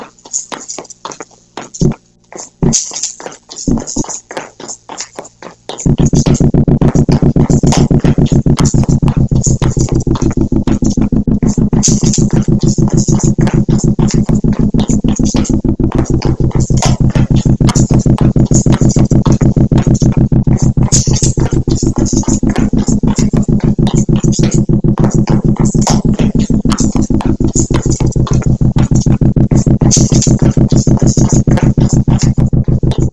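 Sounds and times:
tap dancing steps: 0.0s - 33.1s.

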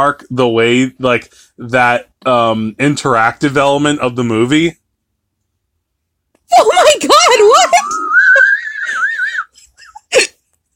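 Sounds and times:
speech: 0.0s - 4.8s, 6.5s - 8.2s
high wavering squeal-like vocal sound: 7.6s - 9.6s.

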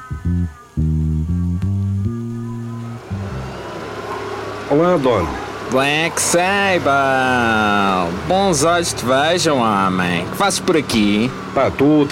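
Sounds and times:
taxi engine slowing to a stop: 0.1s - 12.0s
speech: 4.7s - 12.0s.

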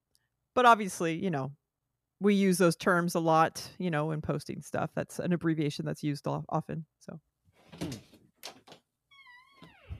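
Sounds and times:
speech: 0.6s - 1.6s, 2.2s - 8.0s
door hinge squealing as the door opens: 9.1s - 9.9s.

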